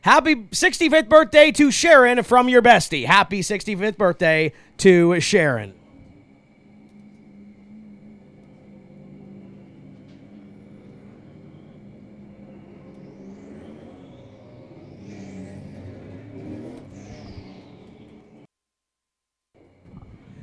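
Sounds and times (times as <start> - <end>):
speech: 0.0 - 5.8
race car engines roaring on track during a Pro Stock heat race: 0.0 - 18.5
race cars passing by on track: 3.2 - 18.5.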